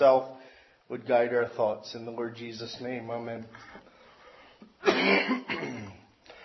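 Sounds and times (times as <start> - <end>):
speech: 0.0 - 3.9, 4.8 - 5.8
person coughing: 4.8 - 6.1
rough throat clearing: 4.8 - 6.1.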